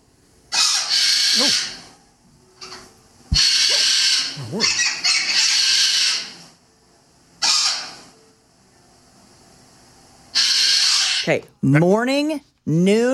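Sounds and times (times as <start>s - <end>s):
three pet birds squawking: 0.5s - 1.9s, 2.6s - 6.5s, 7.4s - 8.0s, 10.3s - 11.3s
speech: 11.3s - 13.1s.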